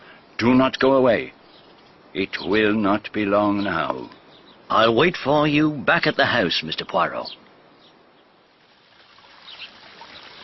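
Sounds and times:
speech: 0.4s - 1.4s, 2.1s - 7.4s
water trickling and splashing at a waterfall: 8.4s - 10.4s.

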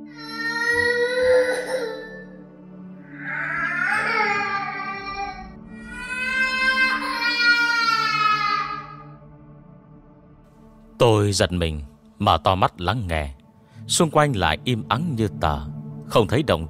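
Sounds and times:
young child crying outside an inn at night: 0.1s - 2.3s, 3.1s - 9.2s
speech: 11.0s - 16.6s.

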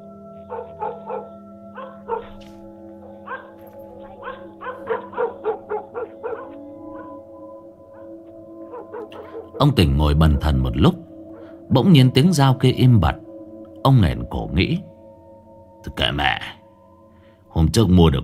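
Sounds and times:
steady low tonal hum: 0.0s - 17.3s
several dogs barking in a narrow alley: 0.4s - 9.8s
speech: 9.6s - 11.0s, 11.8s - 13.2s, 13.8s - 14.9s, 15.8s - 16.6s, 17.7s - 18.2s.

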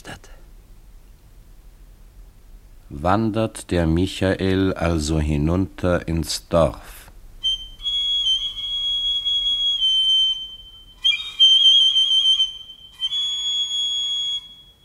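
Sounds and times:
speech: 2.9s - 7.0s
handheld pipe whistle blasts: 7.4s - 14.8s.

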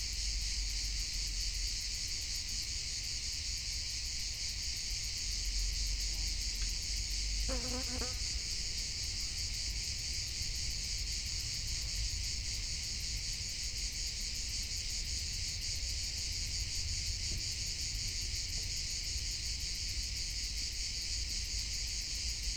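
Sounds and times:
crickets chirping on a summer mountaintop: 0.0s - 22.5s
speech: 7.5s - 8.3s.

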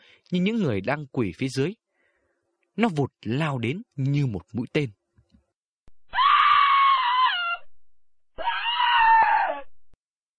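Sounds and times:
speech: 0.3s - 1.8s, 2.8s - 5.0s
person screaming: 6.1s - 7.7s, 8.4s - 9.8s.

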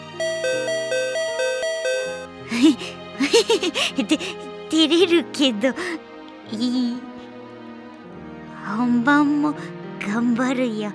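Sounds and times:
doorbell ding-dong chime: 0.0s - 2.3s
speech: 2.6s - 7.1s, 8.7s - 10.9s.

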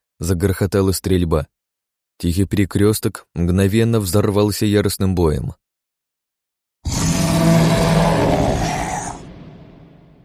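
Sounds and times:
speech: 0.2s - 1.6s, 2.2s - 5.6s
wounded beast roaring in anger and pain: 6.8s - 10.2s.

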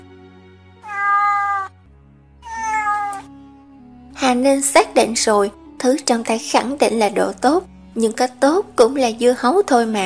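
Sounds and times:
cat lying on a person's lap meowing: 0.8s - 1.8s, 2.4s - 3.3s
speech: 4.3s - 10.0s.

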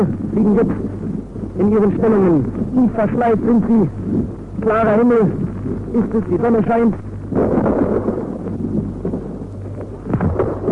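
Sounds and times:
speech: 0.0s - 0.9s, 1.6s - 7.6s
artillery fire shelling enemy positions in wartime combat: 7.3s - 10.7s.

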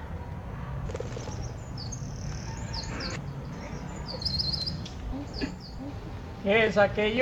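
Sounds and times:
bird chirping and tweeting: 1.1s - 6.2s
speech: 6.5s - 7.2s.

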